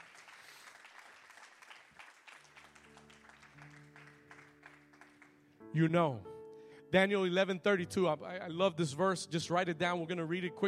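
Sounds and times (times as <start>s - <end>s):
audience clapping: 0.0s - 5.6s
speech: 5.8s - 6.3s, 6.9s - 10.6s.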